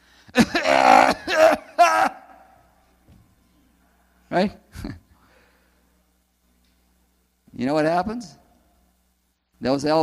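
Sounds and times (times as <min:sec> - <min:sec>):
person imitating a harsh hacking smoker's cough: 0:00.4 - 0:02.0
speech: 0:04.4 - 0:05.0, 0:07.7 - 0:08.4, 0:09.6 - 0:10.0.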